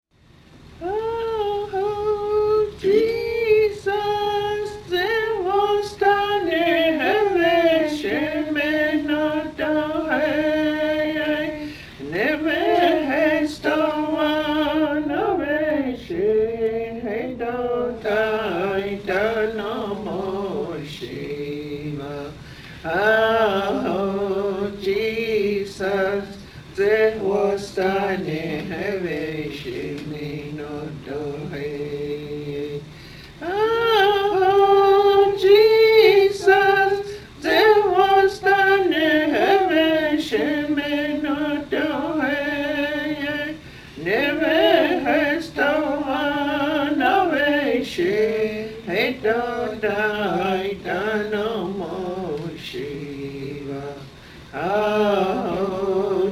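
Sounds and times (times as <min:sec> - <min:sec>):
hymn singing from a hymnbook: 0:00.3 - 0:56.3.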